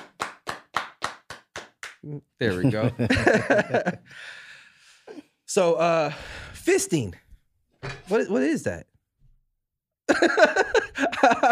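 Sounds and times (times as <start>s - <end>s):
hand claps: 0.0s - 2.0s
speech: 2.0s - 4.5s, 5.5s - 7.2s, 7.8s - 8.9s, 10.1s - 11.4s
laughter: 2.4s - 4.1s, 10.1s - 11.4s.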